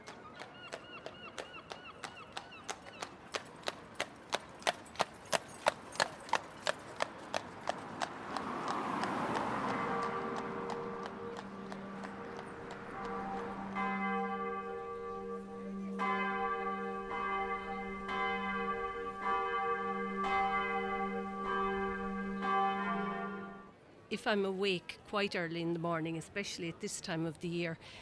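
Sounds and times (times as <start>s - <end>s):
horse's hooves clip-clopping on a road in Killarney: 0.0s - 13.8s
broad rumble of passing traffic in Killarney: 3.7s - 23.9s
friary church bells ringing in Killarney: 9.2s - 23.7s
speech: 24.1s - 27.9s.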